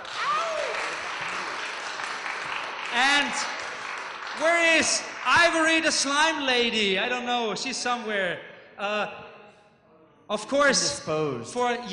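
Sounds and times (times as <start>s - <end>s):
audience applause at a conference: 0.0s - 6.1s
speech: 4.4s - 9.3s, 10.3s - 11.9s.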